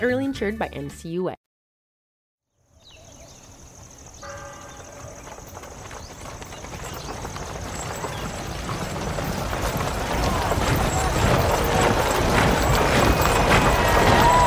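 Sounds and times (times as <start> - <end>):
speech: 0.0 - 1.5
horse hooves clip-clopping: 4.0 - 14.4.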